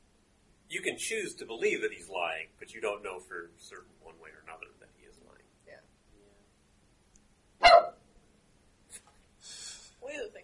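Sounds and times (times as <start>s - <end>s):
speech: 0.7s - 5.9s
dog barking: 7.6s - 8.0s.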